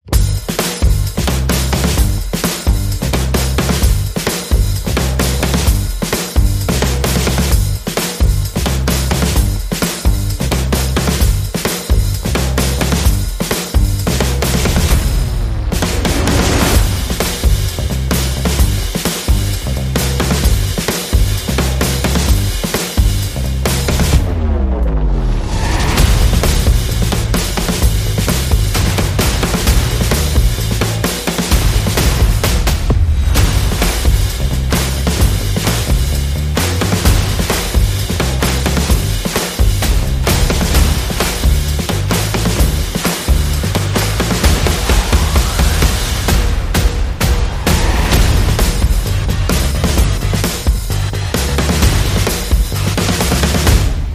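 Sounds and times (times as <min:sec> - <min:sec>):
funky percussion: 0:00.0 - 0:24.6, 0:25.6 - 0:54.1
bass: 0:00.0 - 0:54.1
sound effects: 0:14.0 - 0:19.0, 0:23.7 - 0:52.4.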